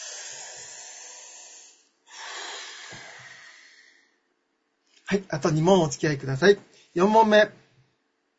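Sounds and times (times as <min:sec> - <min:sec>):
slow deep breath: 0:00.0 - 0:04.2
speech: 0:05.1 - 0:07.6.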